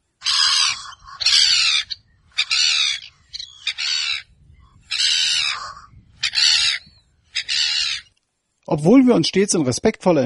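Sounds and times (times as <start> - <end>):
agitated gull calling: 0.2 - 8.1
speech: 8.7 - 10.2.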